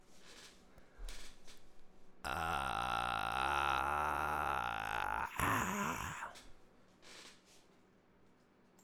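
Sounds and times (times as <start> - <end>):
vocal fry voice: 2.3 - 6.4.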